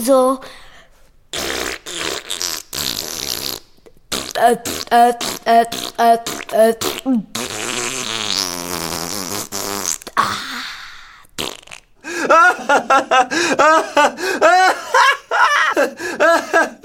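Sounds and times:
speech: 0.0 - 0.6, 4.4 - 7.3, 12.9 - 15.0
exaggerated fart noises blown with the mouth: 1.3 - 10.4, 11.4 - 12.0
person snickering and laughing: 12.1 - 16.8.

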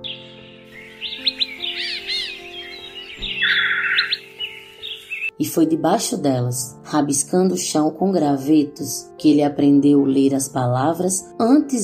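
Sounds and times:
birds singing in mango trees in a house's backyard in Recife: 0.0 - 5.4
speech: 5.4 - 11.8.

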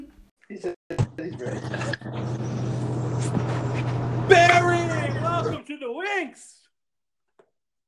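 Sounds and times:
speech: 0.6 - 3.4, 4.3 - 6.6
voices: 0.9 - 2.6, 3.3 - 5.6
truck engine droning over a phone line: 1.0 - 5.6
road noise: 1.1 - 5.6.

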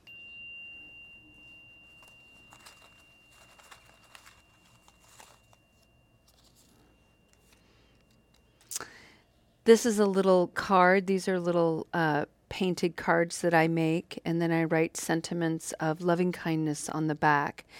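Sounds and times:
meditation chime ringing: 0.0 - 9.8
soft room noise: 0.0 - 17.7
speech: 9.7 - 17.7.

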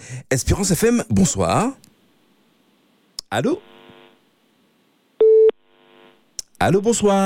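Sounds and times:
speech: 0.3 - 1.9, 3.3 - 3.7, 6.6 - 7.2
telephone line tone on a radio call-in line: 5.2 - 5.6.

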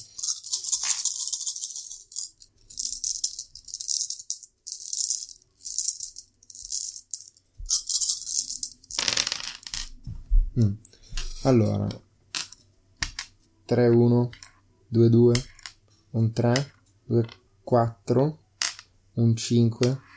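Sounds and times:
dice clattering onto a surface: 0.0 - 10.0, 12.3 - 13.4, 15.3 - 15.8, 18.6 - 18.9
dice shaken in a cup: 0.0 - 10.0
speech: 10.6 - 10.8, 11.4 - 12.0, 13.7 - 15.5, 16.1 - 18.4, 19.2 - 20.1.

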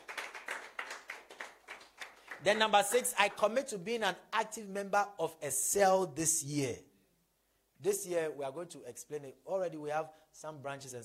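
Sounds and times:
crowd clapping hands in a steady rhythmic beat: 0.0 - 3.6
speech: 2.4 - 6.9, 7.8 - 11.0.

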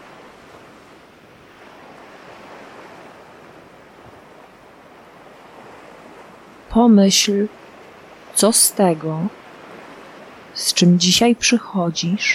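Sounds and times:
faint wind-like hiss: 0.0 - 6.8, 7.5 - 8.5, 9.3 - 10.6
steady surf of ocean waves washing in: 0.0 - 12.3
speech: 6.8 - 7.6, 8.4 - 9.4, 10.6 - 12.3.

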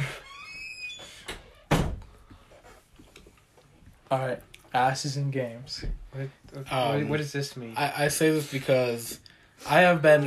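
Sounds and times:
faint creaks: 0.0 - 1.7
door closing with a solid thud: 1.0 - 2.1
speech: 4.1 - 10.2.

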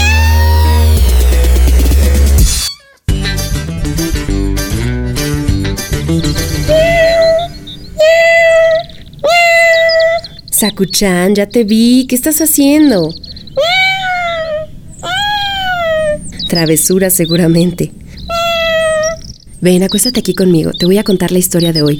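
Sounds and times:
pet cat meowing: 0.0 - 1.1, 2.5 - 3.1, 6.6 - 10.6, 13.6 - 16.5, 18.2 - 19.3
steady music: 0.0 - 7.9
speech: 10.6 - 13.7, 16.5 - 18.0, 19.6 - 21.9.

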